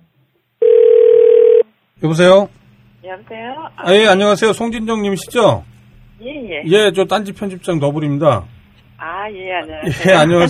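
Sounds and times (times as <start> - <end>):
telephone call connecting tone: 0.6 - 1.7
speech: 2.0 - 8.6, 9.3 - 10.4.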